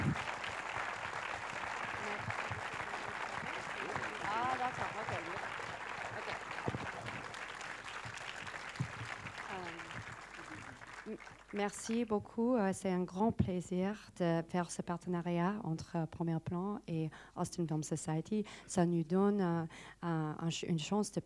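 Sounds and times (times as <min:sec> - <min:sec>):
large audience applause welcoming a guest: 0:00.0 - 0:11.9
speech: 0:11.1 - 0:21.2.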